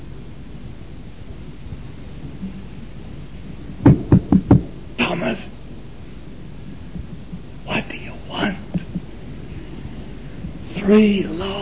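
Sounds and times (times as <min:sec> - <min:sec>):
firm knocks on a wooden door: 0:03.8 - 0:04.7
speech: 0:10.9 - 0:11.6.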